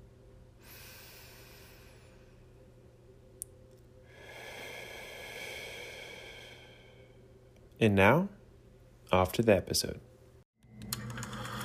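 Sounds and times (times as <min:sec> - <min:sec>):
person taking a slow deep breath: 0:00.6 - 0:02.6, 0:04.0 - 0:07.3
speech: 0:07.8 - 0:08.4, 0:09.1 - 0:10.1.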